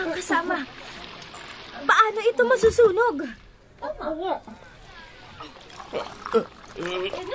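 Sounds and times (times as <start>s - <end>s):
water poured from jars splashing onto offering: 0.0s - 7.3s
speech: 1.8s - 4.7s, 5.4s - 7.3s.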